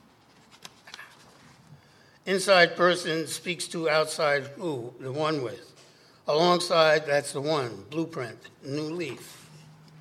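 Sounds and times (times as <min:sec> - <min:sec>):
paper rustling and crinkling: 0:00.2 - 0:01.6
speech: 0:02.3 - 0:05.7, 0:06.3 - 0:09.4.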